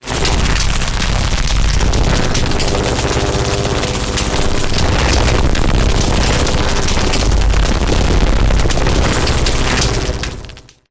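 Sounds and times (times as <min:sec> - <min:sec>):
electrical substation mechanical units humming: 0:00.0 - 0:10.7.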